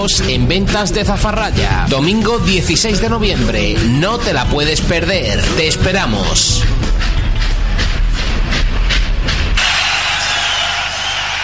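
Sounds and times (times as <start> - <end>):
speech: 0.0 - 7.1
train rolling on rails: 2.5 - 11.4.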